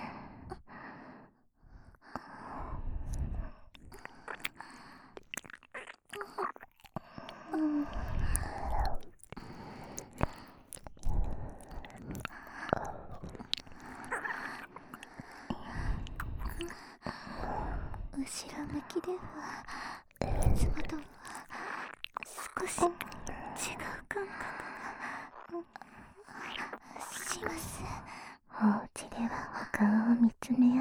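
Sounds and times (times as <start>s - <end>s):
soft breaths: 0.0s - 5.3s, 6.2s - 22.0s, 22.6s - 29.8s
wet ASMR ear-licking mouth sounds: 3.1s - 16.8s, 19.3s - 24.9s.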